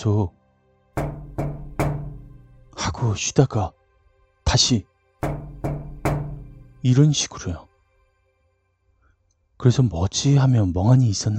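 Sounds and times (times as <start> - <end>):
speech: 0.0 - 0.4, 3.0 - 3.8, 4.5 - 4.9, 6.8 - 7.7, 9.6 - 11.3
firm knocks on a fifth-floor bedroom window: 1.0 - 2.8, 5.2 - 6.8.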